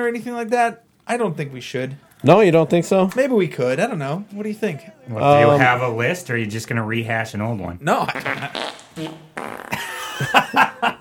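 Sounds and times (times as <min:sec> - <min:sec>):
speech: 0:00.0 - 0:10.6
laughter: 0:07.9 - 0:10.9
fart sounds: 0:08.1 - 0:10.3.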